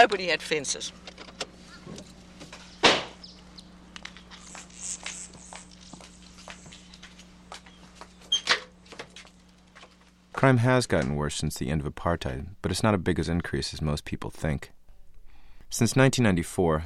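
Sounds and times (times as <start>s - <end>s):
speech: 0.0s - 1.1s, 10.4s - 14.8s, 15.7s - 16.8s
steady low motor hum of metal security gates: 0.0s - 11.0s.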